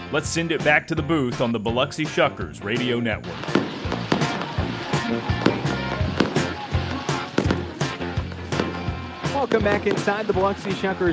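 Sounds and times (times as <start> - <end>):
speech: 0.1 - 3.7, 5.1 - 5.5, 9.4 - 11.1
fireworks bursting over center field at a baseball stadium: 3.2 - 11.1.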